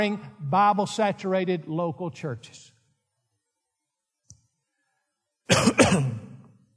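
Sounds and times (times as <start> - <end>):
speech: 0.0 - 2.7, 5.5 - 6.2
loud harsh throat-clearing cough: 5.5 - 6.4.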